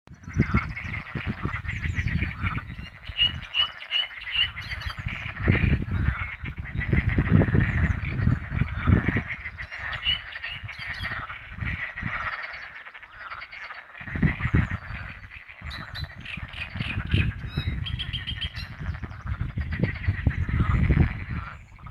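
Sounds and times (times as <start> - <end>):
fire-bellied toads calling: 0.2 - 21.8.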